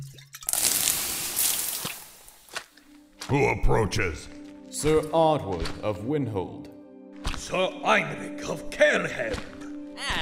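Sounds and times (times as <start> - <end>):
water doused on flames hissing and sizzling: 0.5 - 2.6
speech: 3.3 - 6.7, 7.5 - 9.5.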